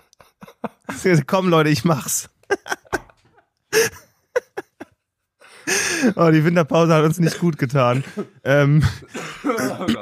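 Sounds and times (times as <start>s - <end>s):
laughter: 0.0s - 1.3s, 2.0s - 5.0s, 7.2s - 9.9s
speech: 1.0s - 2.4s, 6.0s - 9.9s
person clearing throat with rough grunts: 8.9s - 9.9s.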